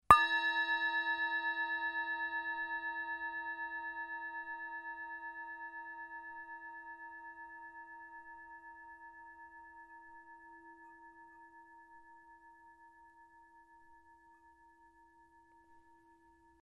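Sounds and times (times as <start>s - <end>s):
Tibetan singing bowl struck: 0.1s - 5.6s.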